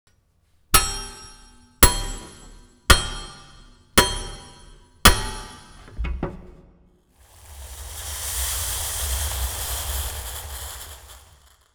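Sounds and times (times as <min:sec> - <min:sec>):
blacksmith hammer on metal: 0:00.7 - 0:05.9
hot metal cooling: 0:00.7 - 0:05.9, 0:07.2 - 0:11.7.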